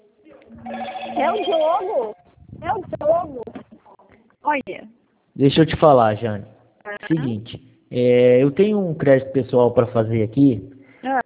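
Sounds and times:
phone electronic ringtone warbling with an incoming call: 0:00.5 - 0:02.8
speech: 0:00.6 - 0:02.2, 0:04.4 - 0:11.2.

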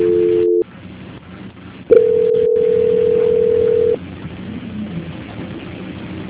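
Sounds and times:
telephone line tones during call transfer: 0:00.0 - 0:00.6, 0:01.9 - 0:04.0.

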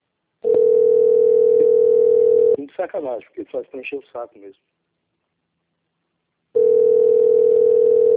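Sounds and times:
telephone ringing tone on an unanswered call: 0:00.4 - 0:02.6, 0:06.6 - 0:08.1
speech: 0:02.8 - 0:04.7.

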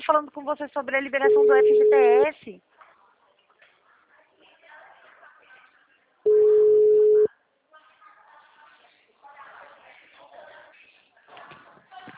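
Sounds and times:
speech: 0:00.1 - 0:02.7
telephone busy tone after a dropped call: 0:01.3 - 0:02.3, 0:06.3 - 0:07.3.

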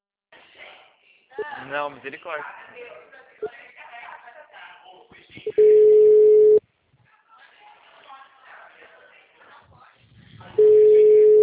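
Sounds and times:
speech: 0:01.4 - 0:03.7
telephone call tones while a number is dialed: 0:05.5 - 0:06.6, 0:10.6 - 0:11.4.

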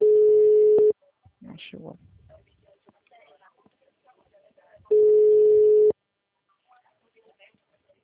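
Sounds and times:
telephone busy tone after a dropped call: 0:00.0 - 0:00.9, 0:04.9 - 0:05.9.

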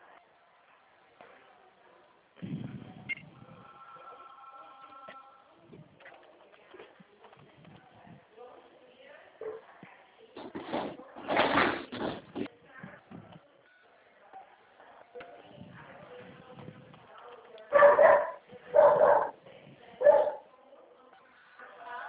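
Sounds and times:
angry dog barking at people passing in the street: 0:17.7 - 0:19.4, 0:20.0 - 0:20.5.

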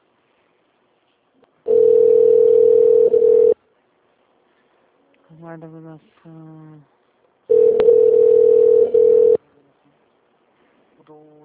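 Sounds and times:
electronic telephone ringing tone on an unanswered call: 0:01.7 - 0:03.6, 0:07.5 - 0:09.4
speech: 0:05.6 - 0:07.0.

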